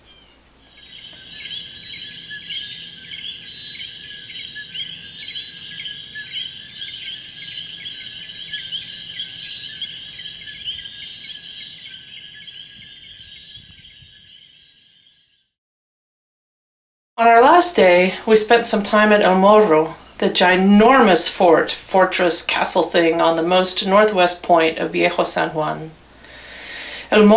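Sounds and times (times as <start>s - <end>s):
coqui frogs singing in a night chorus: 0.6s - 15.5s
speech: 17.2s - 26.0s, 27.1s - 27.3s.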